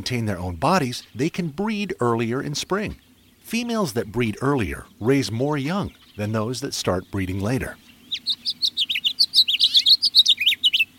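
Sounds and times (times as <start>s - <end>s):
speech: 0.0s - 8.6s
house finch singing a warbling song: 0.0s - 10.9s.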